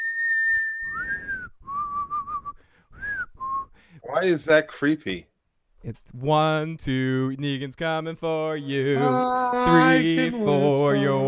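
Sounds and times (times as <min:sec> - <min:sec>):
whistled tune imitating a creature's whistle: 0:00.0 - 0:03.8
speech: 0:04.0 - 0:11.2.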